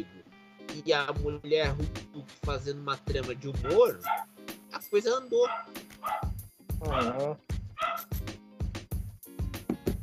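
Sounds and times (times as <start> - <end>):
speech: 0.8 - 6.2, 6.8 - 7.5
dogs barking: 3.6 - 4.3, 5.4 - 7.2, 7.8 - 8.2.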